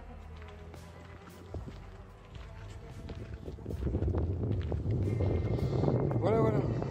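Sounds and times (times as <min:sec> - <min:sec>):
outdoor noise: 0:00.0 - 0:06.9
low rumbling wind buffeting microphone: 0:02.8 - 0:06.9.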